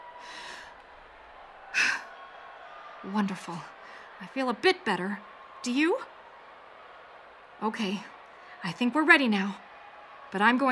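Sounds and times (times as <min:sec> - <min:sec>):
deep breath in during a calming breathing exercise: 0:00.2 - 0:00.8
speech: 0:03.0 - 0:06.1, 0:07.6 - 0:09.6, 0:10.3 - 0:10.7.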